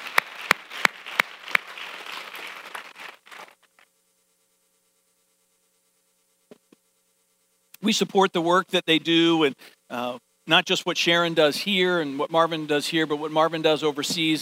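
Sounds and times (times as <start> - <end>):
crowd applauding: 0.0 - 3.2
speech: 7.8 - 14.4.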